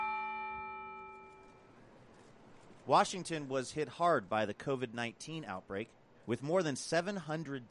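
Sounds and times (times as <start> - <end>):
large tower bell chiming the hour: 0.0 - 1.8
faint outdoor ambience: 0.0 - 7.7
speech: 2.9 - 7.7.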